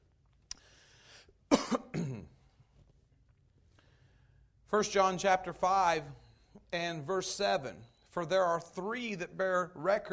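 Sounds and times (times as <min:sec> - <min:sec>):
person coughing after something went down the wrong way: 0:01.5 - 0:02.4
speech: 0:04.7 - 0:10.1.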